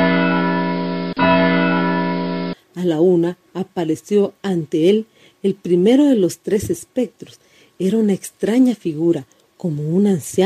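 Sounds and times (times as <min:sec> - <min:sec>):
clock chimes with resonant bell tone: 0:00.0 - 0:02.6
speech: 0:02.8 - 0:10.4.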